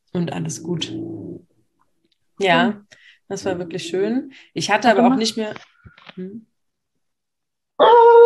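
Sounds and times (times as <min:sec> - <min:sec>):
speech: 0:00.2 - 0:01.5, 0:02.4 - 0:06.5
dog growling: 0:00.6 - 0:01.5.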